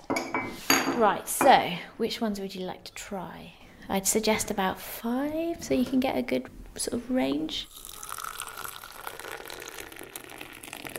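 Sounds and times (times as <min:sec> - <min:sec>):
speech: 0:01.0 - 0:07.9
English breakfast and Earl Grey tea pouring into cups: 0:07.6 - 0:10.9.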